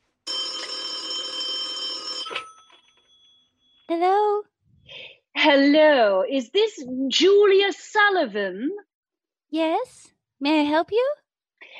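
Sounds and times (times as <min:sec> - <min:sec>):
old-fashioned telephone bell ringing: 0:00.3 - 0:03.9
speech: 0:03.9 - 0:04.5, 0:05.4 - 0:08.9, 0:09.5 - 0:11.7.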